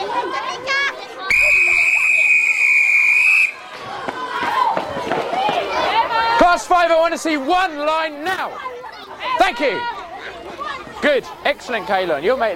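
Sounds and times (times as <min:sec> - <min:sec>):
noisy chatter of a crowd of children: 0:00.0 - 0:12.5
long shrill whistle blast: 0:01.3 - 0:03.6
speech: 0:06.8 - 0:08.7, 0:09.4 - 0:09.9, 0:11.0 - 0:12.5.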